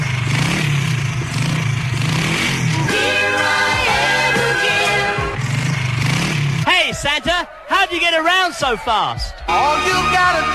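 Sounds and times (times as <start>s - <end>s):
motorbike engine revving: 0.0s - 7.6s
speech: 7.9s - 10.5s.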